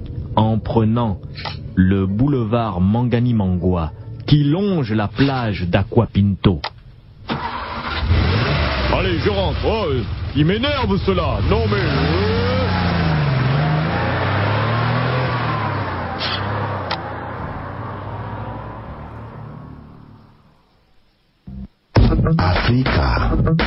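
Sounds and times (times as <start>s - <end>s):
speech: 0.6s - 6.7s, 8.9s - 12.2s, 22.3s - 23.6s
car engine roaring while speeding along a seaside boulevard beside a beach: 7.3s - 20.7s.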